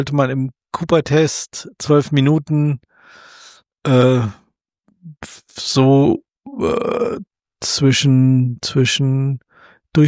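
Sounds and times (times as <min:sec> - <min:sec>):
speech: 0:00.0 - 0:04.4, 0:05.0 - 0:10.0
person imitating asthmatic heavy panting after running: 0:02.9 - 0:03.6.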